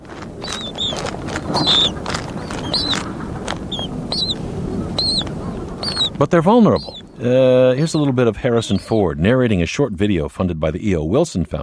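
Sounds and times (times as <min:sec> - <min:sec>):
Adelie penguin chicks calling in Antarctica: 0:00.0 - 0:09.1
speech: 0:01.6 - 0:02.2, 0:06.2 - 0:11.6.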